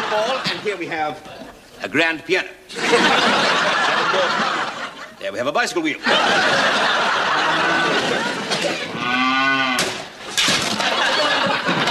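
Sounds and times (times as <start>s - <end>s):
laughter: 0.0s - 1.8s, 2.7s - 5.2s, 5.9s - 9.1s, 10.6s - 11.8s
speech: 0.1s - 9.3s
cow mooing: 9.0s - 9.8s.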